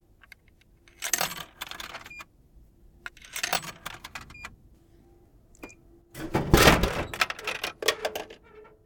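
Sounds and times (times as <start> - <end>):
coke machine: 0.2 - 2.3, 3.0 - 4.6, 5.6 - 8.8.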